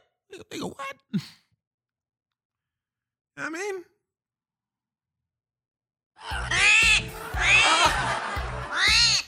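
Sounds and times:
speech: 0.6 - 1.4
owl calls as drawn-out screeching wails: 6.2 - 7.9, 8.7 - 9.2
laughter: 6.2 - 9.2.

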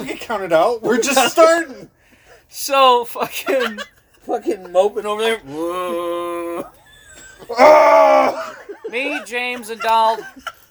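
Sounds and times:
speech: 0.3 - 6.8, 7.4 - 10.6
laughter: 3.1 - 10.7
loud strained guttural human scream: 5.5 - 6.7, 7.5 - 8.6.

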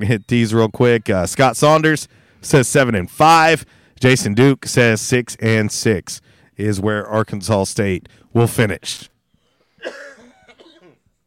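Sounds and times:
speech: 0.0 - 9.1, 9.8 - 10.0
rough throat-clearing rasp: 9.8 - 11.1
single harsh cough: 9.8 - 11.1.

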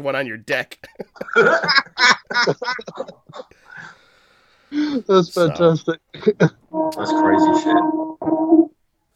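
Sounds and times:
speech: 0.0 - 4.0, 4.7 - 8.7
laughter: 0.9 - 3.9
train horn blaring: 6.7 - 8.7.

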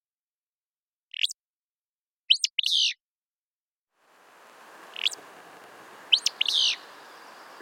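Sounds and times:
steady hiss: 4.0 - 7.6
Willow Flycatcher singing sharp buzzy phrases: 4.3 - 7.6.

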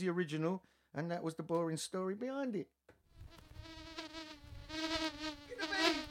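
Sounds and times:
speech: 0.0 - 2.9
buzzing bees sample played on keyboard: 3.2 - 6.0.

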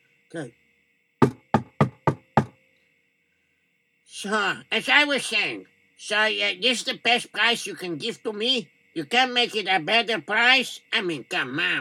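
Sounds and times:
faint steady hum: 0.0 - 11.8
speech: 0.3 - 0.6, 4.2 - 11.8
knocking on a door: 1.2 - 2.6.

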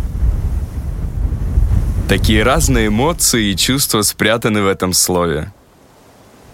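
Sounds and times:
gusty wind buffeting the microphone: 0.0 - 4.2
sea surf roaring with rumbling wave wash: 0.0 - 6.5
speech: 2.1 - 5.6.

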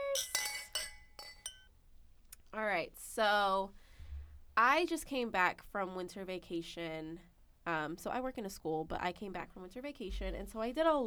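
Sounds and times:
wine glasses clinking in a toast: 0.0 - 1.7
speech: 2.6 - 3.8, 4.6 - 11.0.

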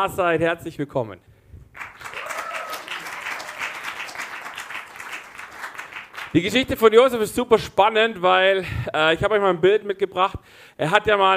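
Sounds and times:
speech: 0.0 - 1.3, 6.3 - 11.3
crowd applauding in a church: 1.8 - 6.8.

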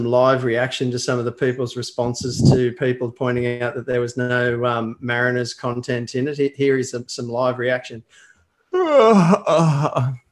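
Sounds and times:
speech: 0.0 - 10.2
person yawning loudly: 8.8 - 10.2.

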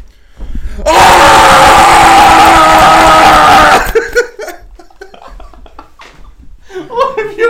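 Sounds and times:
person imitating a gorilla's call with a hoarse roar-scream: 0.8 - 3.9.

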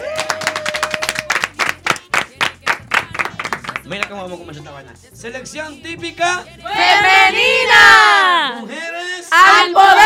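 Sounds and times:
small group hand clapping: 0.0 - 4.2
speech: 3.8 - 9.9.

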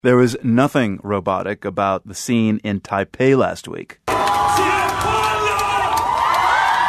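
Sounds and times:
speech: 0.0 - 5.1
crowd of hundreds cheering and whooping at a same-sex marriage celebration in Taipei: 4.1 - 6.8.

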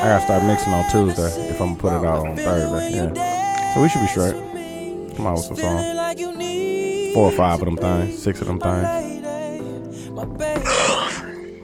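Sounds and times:
speech: 0.0 - 4.5, 5.2 - 6.3, 7.1 - 9.0
person yawning into a microphone: 10.6 - 11.5.

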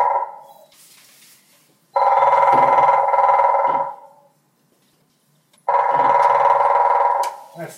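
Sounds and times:
grey-headed woodpecker drumming: 2.0 - 4.3, 5.6 - 7.4.

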